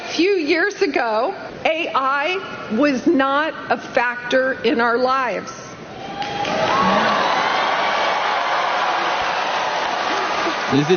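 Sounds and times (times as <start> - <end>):
speech: 0.2 - 5.6, 10.7 - 10.9
large crowd roaring and cheering: 6.0 - 10.9.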